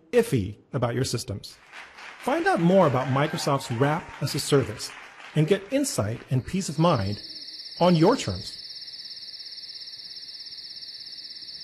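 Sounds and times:
speech: 0:00.1 - 0:08.6
laughter: 0:02.3 - 0:06.5
crickets chirping: 0:06.3 - 0:11.6.

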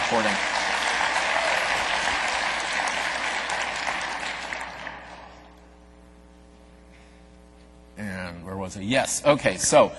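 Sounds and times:
large audience applauding loudly: 0:00.0 - 0:05.6
speech: 0:00.1 - 0:00.6, 0:08.7 - 0:09.9.

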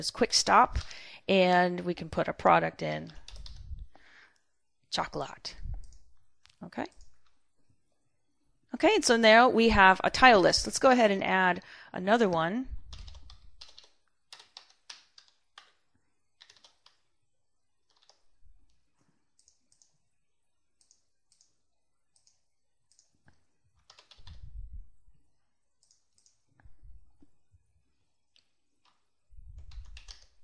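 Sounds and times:
speech: 0:00.0 - 0:03.2, 0:04.9 - 0:05.6, 0:06.6 - 0:07.0, 0:08.7 - 0:12.8
typing on a computer keyboard into an autocomplete search field: 0:03.1 - 0:03.6, 0:12.9 - 0:15.8, 0:16.4 - 0:17.0, 0:17.8 - 0:18.3, 0:23.8 - 0:24.4, 0:29.6 - 0:30.4.

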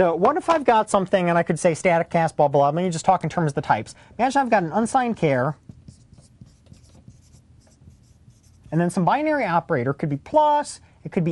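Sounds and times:
speech: 0:00.0 - 0:05.7, 0:08.7 - 0:11.2
soft rubbing: 0:05.5 - 0:08.9
marker writing on a whiteboard: 0:05.6 - 0:08.8.

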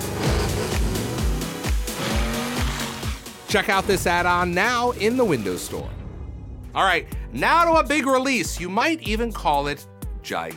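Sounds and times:
video game racing car engine roaring through gears: 0:00.0 - 0:04.1
speech: 0:03.5 - 0:06.0, 0:06.8 - 0:10.5.

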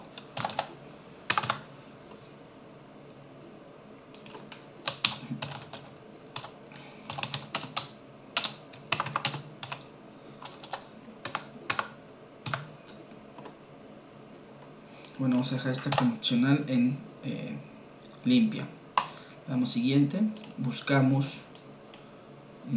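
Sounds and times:
typing a product name on a computer keyboard: 0:00.1 - 0:01.6, 0:04.1 - 0:13.6, 0:15.3 - 0:16.2, 0:19.0 - 0:19.2
speech: 0:15.4 - 0:18.8, 0:19.5 - 0:21.5.

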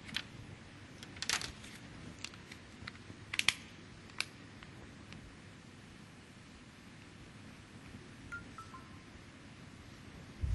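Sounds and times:
quiet hiss: 0:00.0 - 0:10.5
plastic clicks and snaps of a cover fitted onto a phone: 0:02.2 - 0:05.2.

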